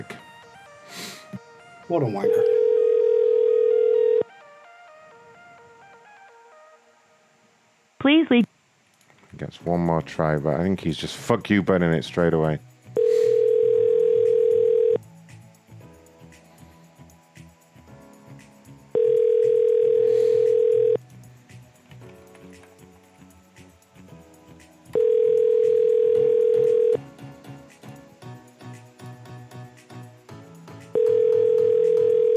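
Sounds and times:
outgoing phone call ringback tone: 1.5 - 6.8, 13.0 - 15.0, 19.0 - 21.0, 24.9 - 27.0, 31.0 - 32.3
speech: 1.9 - 2.6, 8.0 - 8.4, 9.4 - 12.7.

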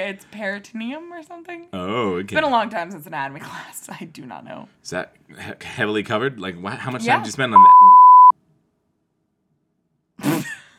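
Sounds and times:
speech: 0.0 - 8.0
short sharp electronic beep: 7.6 - 8.3.

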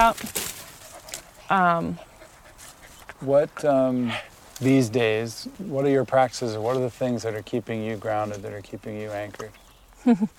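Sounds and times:
speech: 0.0 - 0.4, 1.5 - 2.1, 3.2 - 10.3
dog panting heavily in quick breathy huffs: 0.5 - 3.4.

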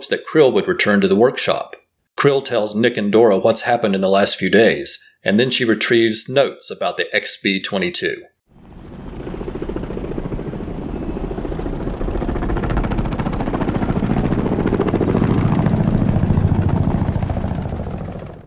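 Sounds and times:
speech: 0.0 - 8.3
helicopter rotors chopping with engine drone: 8.5 - 18.4.

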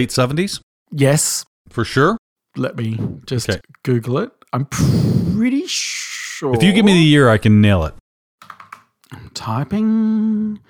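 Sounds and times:
speech: 0.0 - 8.0, 9.1 - 10.6
typing on a computer keyboard: 8.4 - 9.0.

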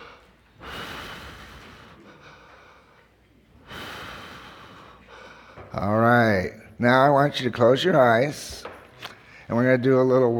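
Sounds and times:
group of people at a Bible study taking deep breaths together: 0.0 - 5.9, 9.0 - 9.5
speech: 5.8 - 8.7, 9.5 - 10.3.

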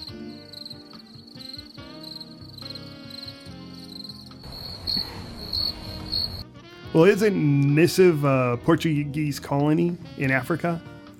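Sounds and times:
crickets chirping in a high-pitched trill: 0.0 - 6.4
speech: 7.0 - 10.9.

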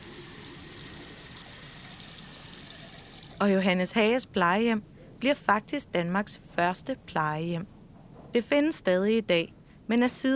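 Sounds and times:
water running from a tap: 0.0 - 3.4
speech: 3.4 - 10.3.

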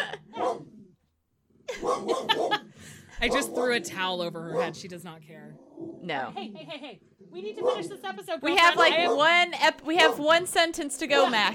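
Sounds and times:
dog barking loudly: 0.3 - 0.7, 1.7 - 4.9, 7.6 - 8.0, 8.6 - 9.4, 10.0 - 10.4
laughter: 1.7 - 3.3, 6.3 - 7.0
speech: 1.9 - 2.5, 3.2 - 11.5.

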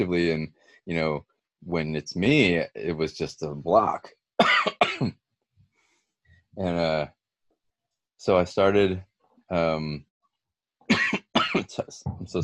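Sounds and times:
speech: 0.0 - 5.2, 6.6 - 7.2, 8.2 - 10.1, 10.9 - 12.4
harsh throaty coughs from a lingering cough: 4.4 - 5.2, 10.9 - 11.8.

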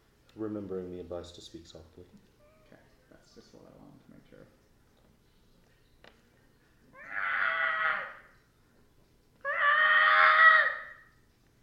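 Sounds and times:
speech: 0.4 - 2.4, 3.4 - 4.6
creature screeching with quality: 7.0 - 8.3, 9.4 - 11.1.

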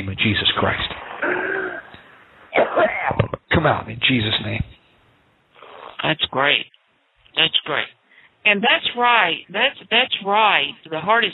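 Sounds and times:
speech: 0.0 - 1.5, 2.6 - 4.8, 6.0 - 6.8, 7.4 - 11.3
deep harsh cough during a deliverance prayer: 2.5 - 3.2.

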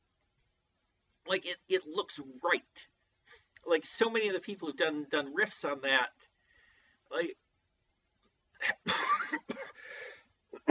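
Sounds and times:
speech: 1.3 - 2.9, 3.6 - 6.3, 7.1 - 7.4, 8.6 - 9.5
person coughing: 8.6 - 9.8.

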